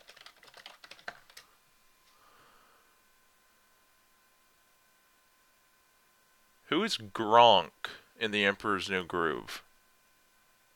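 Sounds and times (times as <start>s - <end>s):
typing on a computer keyboard: 0.0s - 1.5s
speech: 6.7s - 9.7s.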